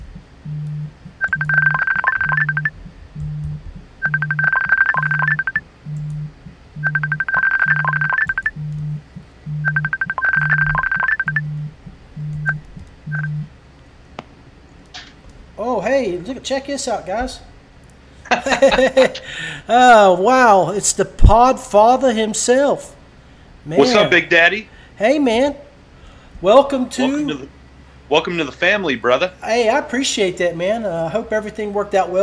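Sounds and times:
warbling phone ringtone over low pulsing beat: 1.2s - 5.6s, 6.8s - 8.8s, 9.6s - 11.7s
speech: 16.0s - 17.5s, 18.5s - 23.0s, 23.6s - 25.6s, 26.4s - 32.2s
laughter: 18.3s - 19.4s.

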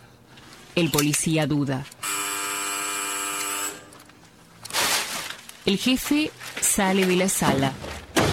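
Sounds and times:
speech: 0.8s - 2.0s, 5.7s - 7.8s
electric doorbell buzzing: 2.0s - 4.0s.

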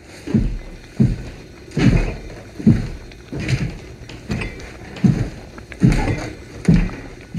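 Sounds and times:
heavy footsteps: 0.0s - 7.3s
creaking floorboards: 0.2s - 7.3s
rattling plates: 1.7s - 7.3s.

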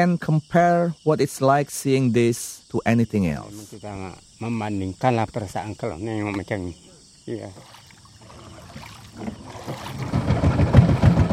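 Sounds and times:
speech: 0.0s - 7.8s
small wooden outboard motorboat chugging down a canal toward Gaung River: 7.5s - 11.3s.

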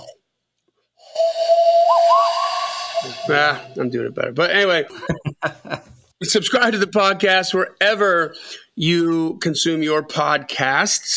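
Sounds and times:
steady airy hiss: 1.0s - 3.9s
person whistling a Western film theme: 1.1s - 3.8s
speech: 3.3s - 11.1s
laughter: 4.9s - 6.0s.

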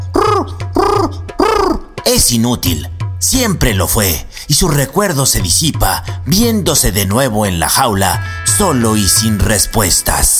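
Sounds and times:
captured pigeon cooing: 0.0s - 2.0s
speech: 2.1s - 10.3s.

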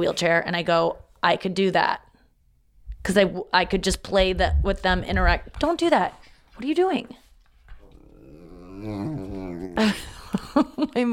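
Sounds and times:
speech: 0.0s - 2.1s, 3.0s - 7.2s, 8.8s - 11.1s
dog sustained tonal growling whine: 7.7s - 10.1s.

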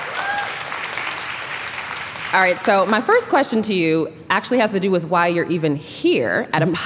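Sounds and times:
crowd applauding: 0.0s - 3.0s
speech: 2.3s - 6.8s.

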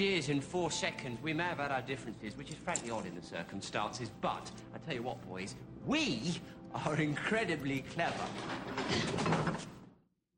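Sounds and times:
speech: 0.0s - 9.8s
unlocked door opening with scraping whoosh: 8.0s - 9.9s.

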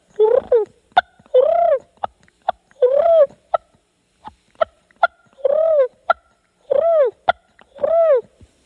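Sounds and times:
voice imitating wild turkey feed and purr calls: 0.2s - 8.2s
sharp clicking clucks: 0.4s - 6.6s, 7.2s - 7.9s.

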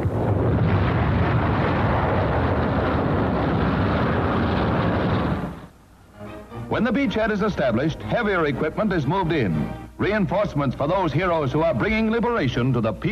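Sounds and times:
bombs exploding on a bridge during an aerial bombing raid: 0.0s - 5.8s
speech: 6.8s - 13.1s.

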